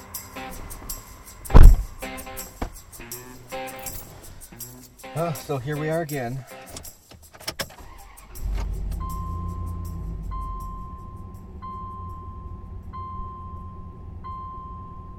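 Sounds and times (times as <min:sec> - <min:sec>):
small green truck low engine rumble: 0:00.4 - 0:02.0, 0:08.4 - 0:15.1
speech: 0:05.2 - 0:06.5
small green truck starting up: 0:07.7 - 0:15.1.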